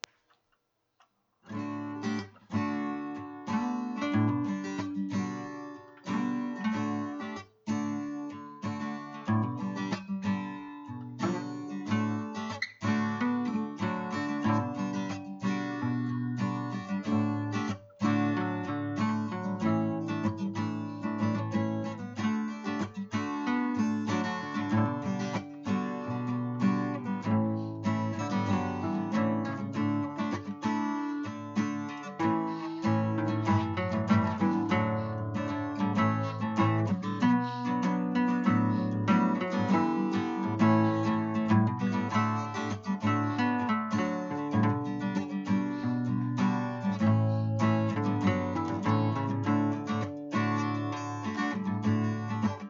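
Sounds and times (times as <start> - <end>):
guitar instrumental of a hymn: 1.5 - 52.6.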